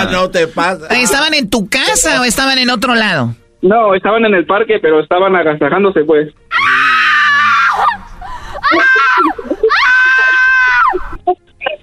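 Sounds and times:
speech: 0.0 - 6.6, 8.7 - 9.5
man screaming: 6.5 - 8.0, 8.6 - 10.9.

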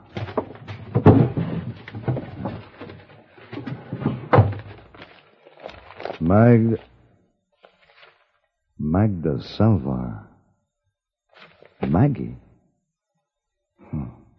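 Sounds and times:
top drawer of a wooden desk pulled open: 0.0 - 6.2
papers rustling: 0.0 - 8.5, 11.3 - 12.0
speech: 6.3 - 6.9, 9.0 - 10.3, 11.9 - 12.4.

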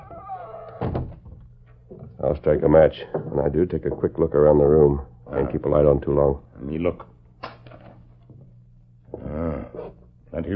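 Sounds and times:
door swinging shut: 0.0 - 1.4
speech: 2.2 - 7.1.

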